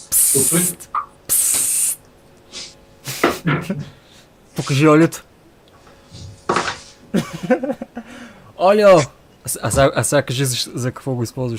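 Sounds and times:
aerosol spray hissing: 0:00.0 - 0:03.3
speech: 0:00.3 - 0:01.0, 0:03.4 - 0:04.0, 0:04.6 - 0:05.3, 0:07.1 - 0:11.5
laughter: 0:07.1 - 0:08.2.

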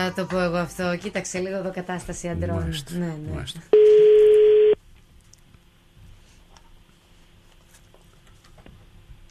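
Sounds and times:
speech: 0:00.0 - 0:04.1
telephone ringback tone while placing a call: 0:03.8 - 0:04.8.

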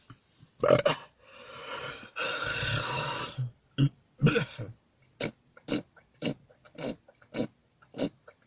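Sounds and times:
person burping involuntarily: 0:00.6 - 0:01.1, 0:02.2 - 0:08.2.

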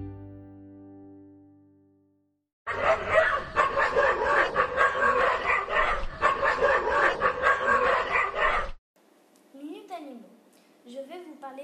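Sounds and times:
pack of dogs barking and howling: 0:02.7 - 0:08.8.

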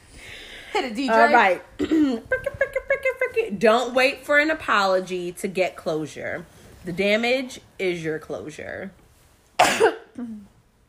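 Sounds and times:
speech: 0:00.8 - 0:09.0, 0:10.2 - 0:10.4
person coughing harshly: 0:01.8 - 0:02.2, 0:09.6 - 0:10.5.

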